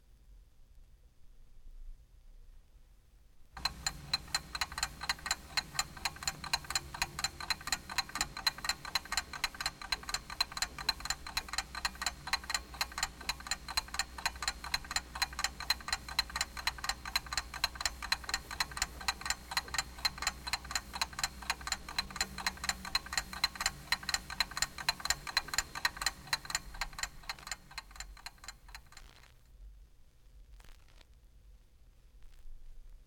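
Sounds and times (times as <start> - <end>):
cheap alarm clock ticking: 3.6 - 29.1.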